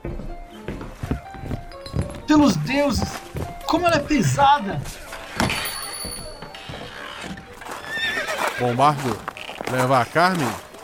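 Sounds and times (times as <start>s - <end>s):
horse hooves clopping on hard ground: 0.0s - 10.8s
speech: 2.3s - 5.0s, 8.6s - 10.7s
horse whinnying: 6.9s - 8.8s.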